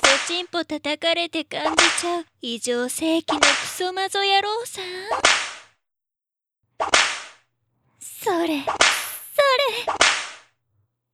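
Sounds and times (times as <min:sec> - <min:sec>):
speech: 0:00.4 - 0:05.5, 0:08.2 - 0:10.2
whip crack: 0:06.8 - 0:07.4, 0:09.9 - 0:10.4.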